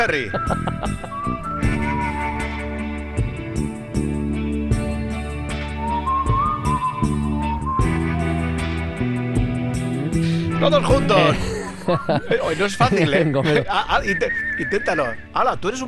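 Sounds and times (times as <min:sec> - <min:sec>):
speech: 0:00.0 - 0:01.8, 0:10.6 - 0:15.8
whistled melody: 0:00.0 - 0:04.2, 0:04.8 - 0:15.8
laughter: 0:00.2 - 0:01.4, 0:10.9 - 0:14.1
full band track with steady drums and bass: 0:09.0 - 0:13.6.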